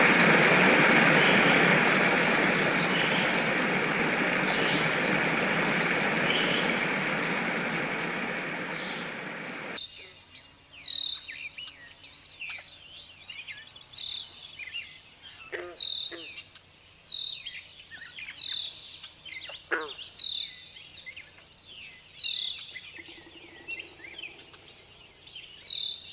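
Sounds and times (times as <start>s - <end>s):
birds chirping and calling: 0.0s - 9.8s
trickling stream: 0.0s - 9.8s.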